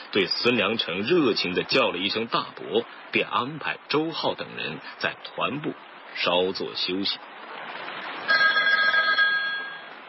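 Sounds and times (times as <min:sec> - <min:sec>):
speech: 0:00.1 - 0:07.3
metallic telephone bell ringing: 0:08.3 - 0:10.0.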